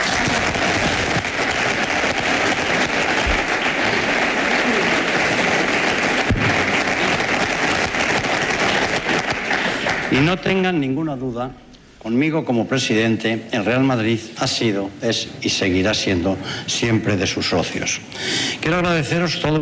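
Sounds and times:
large crowd applauding in a big open venue: 0:00.0 - 0:10.7
speech: 0:10.2 - 0:19.6.

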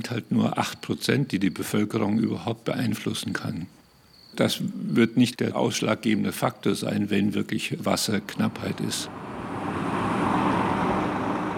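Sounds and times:
speech: 0:00.0 - 0:03.8, 0:04.4 - 0:09.8
trucks driving through a town: 0:08.4 - 0:11.5.

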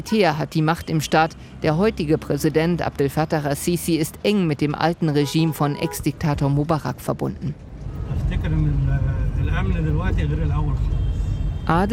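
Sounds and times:
speech: 0:00.0 - 0:11.9
car engine rumble while driving: 0:06.1 - 0:11.9.

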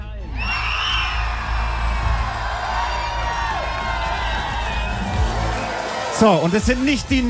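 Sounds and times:
large outdoor crowd cheering in a town square: 0:00.2 - 0:07.2
shouts and high-pitched yells from a crowd: 0:00.3 - 0:06.6
speech: 0:06.2 - 0:07.2.

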